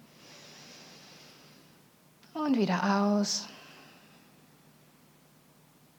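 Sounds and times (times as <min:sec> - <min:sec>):
deep inhale through the nose: 0:00.0 - 0:01.8
speech: 0:02.4 - 0:03.5.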